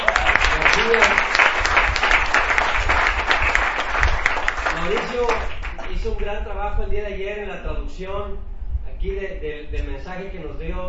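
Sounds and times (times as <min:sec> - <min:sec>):
congregation at a church service applauding to welcome guests: 0:00.0 - 0:06.2
speech: 0:06.0 - 0:10.8.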